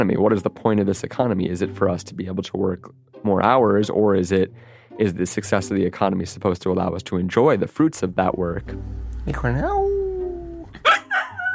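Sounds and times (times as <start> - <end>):
speech: 0.0 - 10.0
puppy high-pitched whimpering: 9.8 - 11.5
puppy yipping: 10.6 - 11.5.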